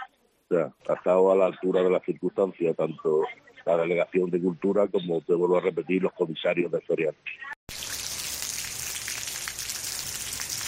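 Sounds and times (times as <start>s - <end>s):
speech: 0.5s - 7.6s
heavy rain pouring down over a city: 7.7s - 10.6s.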